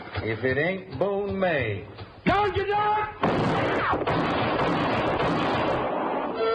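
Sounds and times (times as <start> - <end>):
speech: 0.2 - 5.9
rapid gunfire: 3.2 - 6.4.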